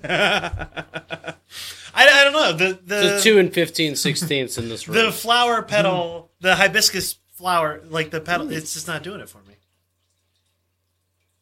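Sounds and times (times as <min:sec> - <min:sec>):
speech: 0:00.0 - 0:00.9, 0:02.5 - 0:09.6
laughter: 0:00.0 - 0:01.4, 0:04.0 - 0:05.1
steady low hum and hiss: 0:00.0 - 0:11.4
liquid trickling into a glass: 0:08.4 - 0:11.4
soft splashy bursts of liquid: 0:09.4 - 0:11.4.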